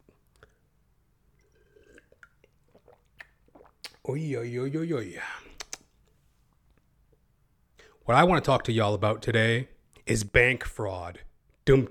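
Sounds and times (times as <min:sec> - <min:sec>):
person sipping and swallowing water: 0:00.0 - 0:04.1
speech: 0:04.1 - 0:05.4, 0:08.1 - 0:11.8.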